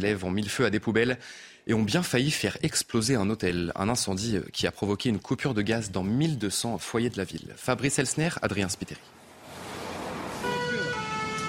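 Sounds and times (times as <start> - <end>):
speech: 0.0 - 9.2
rumbling traffic in Châtenay-Malabry: 8.7 - 11.4
fire engine siren wailing in Châtenay-Malabry: 10.0 - 11.4.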